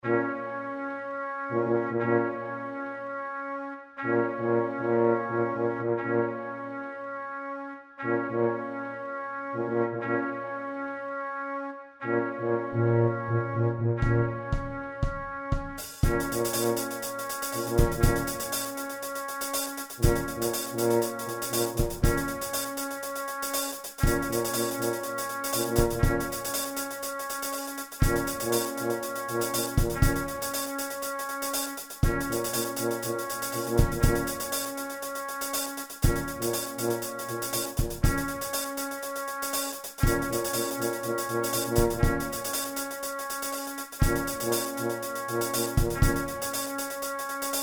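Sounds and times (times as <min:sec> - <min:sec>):
trumpet: 0:00.0 - 0:47.6
tuba: 0:00.0 - 0:47.6
drum kit: 0:14.0 - 0:47.6.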